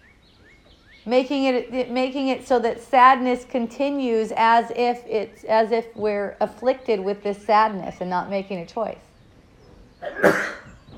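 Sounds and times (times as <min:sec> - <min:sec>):
speech: 0:01.0 - 0:09.1, 0:10.0 - 0:10.5
sneeze: 0:10.0 - 0:10.8.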